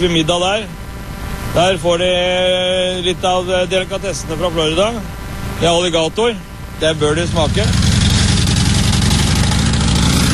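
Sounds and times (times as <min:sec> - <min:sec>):
speech: 0:00.0 - 0:00.8, 0:01.5 - 0:07.8
motorcycle engines running during a long group ride: 0:00.0 - 0:10.3.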